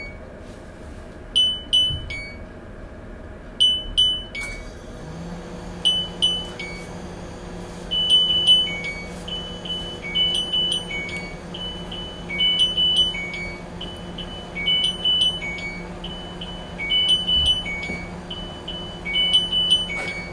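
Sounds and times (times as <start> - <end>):
rhythmic beeps: 1.4 - 2.4, 3.6 - 4.6, 5.8 - 6.9, 7.9 - 20.3.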